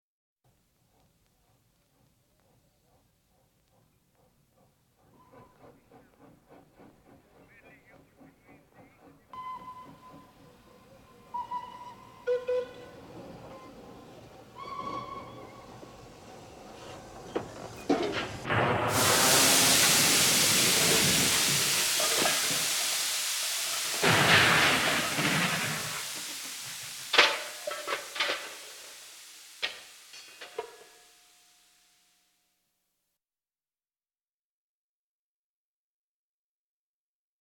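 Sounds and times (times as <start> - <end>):
collision of two steam locomotives: 2.2 - 31.7.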